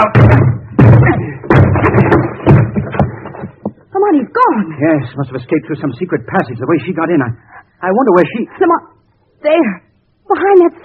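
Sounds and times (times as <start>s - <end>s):
speech: 0.0s - 0.3s, 4.8s - 10.8s
door being broken down with heavy crashing blows: 0.0s - 3.8s.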